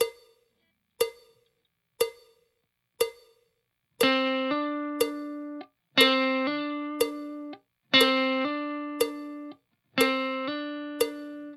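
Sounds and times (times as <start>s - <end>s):
slow blues guitar: 4.0s - 11.5s.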